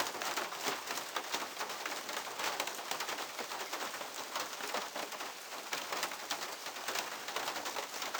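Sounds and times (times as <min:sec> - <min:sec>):
rain on a window: 0:00.0 - 0:08.1.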